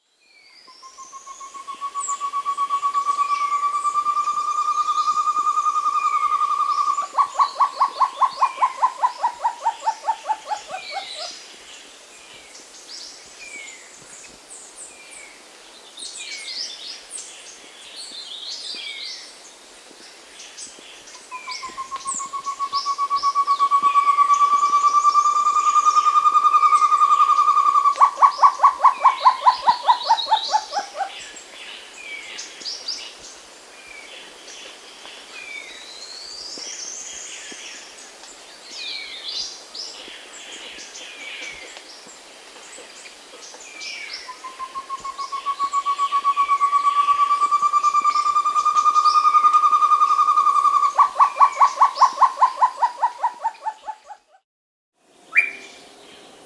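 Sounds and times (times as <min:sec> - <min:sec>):
Short-Tailed Antthrush Chamaeza campanisona calling in the Andes: 0:00.8 - 0:11.3, 0:21.3 - 0:31.2, 0:44.2 - 0:54.2, 0:55.3 - 0:55.8.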